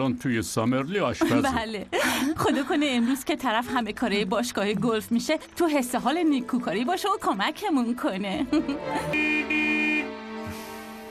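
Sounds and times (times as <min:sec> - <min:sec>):
speech: 0:00.0 - 0:09.7
laughter: 0:01.2 - 0:03.2, 0:08.4 - 0:09.2
car horn honking: 0:09.1 - 0:10.4.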